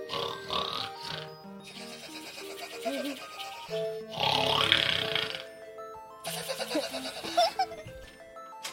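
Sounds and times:
person snoring loudly: 0:00.1 - 0:05.5
laughter: 0:06.3 - 0:08.0.

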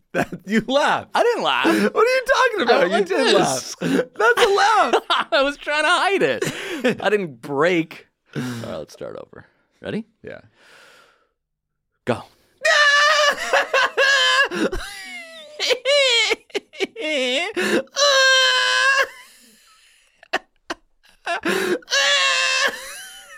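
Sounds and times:
speech: 0:00.1 - 0:10.8, 0:12.0 - 0:13.6, 0:14.5 - 0:15.0, 0:15.6 - 0:18.8, 0:21.3 - 0:22.8
laughter: 0:00.2 - 0:07.0, 0:12.7 - 0:23.3
person screaming in high-pitched wavering bursts: 0:01.4 - 0:05.1, 0:12.6 - 0:14.7, 0:17.1 - 0:19.2, 0:21.3 - 0:23.0.

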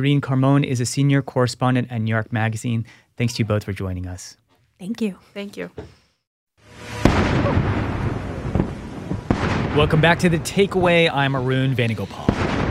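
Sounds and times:
speech: 0:00.0 - 0:06.0, 0:06.7 - 0:07.8, 0:09.8 - 0:12.4
artillery booms from a 21-gun salute in India: 0:06.8 - 0:12.6.

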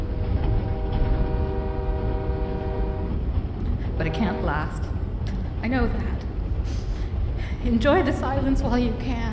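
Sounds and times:
faint humming drone: 0:00.0 - 0:09.3
train wheels rolling on railway tracks: 0:00.0 - 0:09.3
speech: 0:04.0 - 0:05.0, 0:05.6 - 0:06.8, 0:07.6 - 0:09.3.

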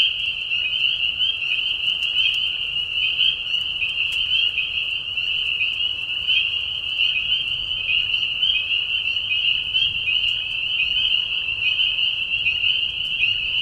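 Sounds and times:
spring peepers chorus giving high whistled mating calls in a marsh at night: 0:00.0 - 0:13.6.

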